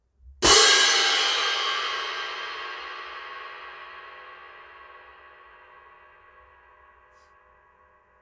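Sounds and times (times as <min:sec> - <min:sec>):
18-inch symphonic pair cymbals: 0:00.4 - 0:05.7.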